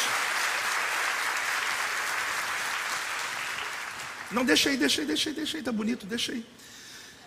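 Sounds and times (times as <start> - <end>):
audience applauding: 0.0 - 4.8
speech: 4.3 - 6.8.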